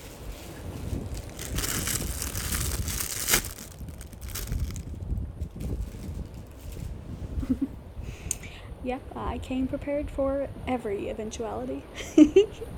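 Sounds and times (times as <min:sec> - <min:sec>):
soft wind-like hiss on a windy day: 0:00.0 - 0:09.0
bag of chips crinkling and rustling outdoors: 0:00.6 - 0:06.9
speech: 0:08.8 - 0:12.7.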